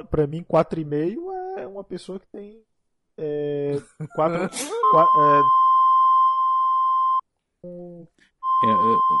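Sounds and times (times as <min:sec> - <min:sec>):
speech: 0:00.0 - 0:05.6, 0:08.6 - 0:09.1
laughter: 0:03.8 - 0:04.8
censor beep tone: 0:04.8 - 0:07.2, 0:08.4 - 0:09.1.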